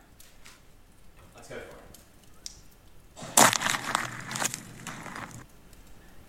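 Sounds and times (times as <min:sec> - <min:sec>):
boot pressing down and crunching a pine cone: 0:03.2 - 0:05.4.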